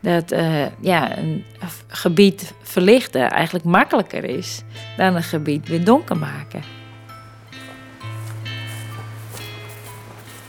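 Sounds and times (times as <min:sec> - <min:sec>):
speech: 0:00.0 - 0:06.8
footsteps walking through a train station: 0:07.5 - 0:10.4.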